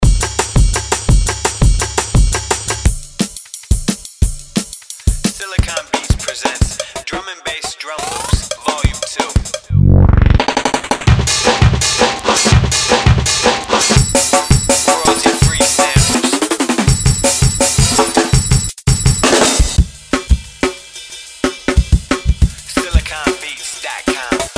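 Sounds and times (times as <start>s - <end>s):
drum and bass drum loop: 0.0s - 24.5s.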